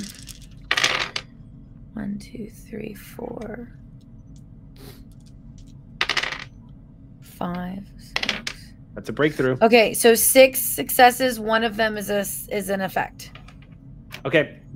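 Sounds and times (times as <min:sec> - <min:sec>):
dice clattering across a hard tabletop: 0:00.0 - 0:01.2, 0:05.2 - 0:06.5, 0:08.2 - 0:08.6
speech: 0:02.0 - 0:03.8, 0:07.4 - 0:08.2, 0:09.0 - 0:13.4, 0:14.2 - 0:14.7.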